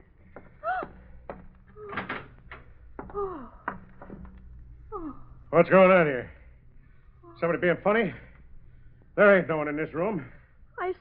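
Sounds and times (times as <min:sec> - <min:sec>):
creaking room door hinges: 0:00.4 - 0:04.7
speech: 0:05.5 - 0:06.4, 0:07.4 - 0:08.3, 0:09.2 - 0:10.9.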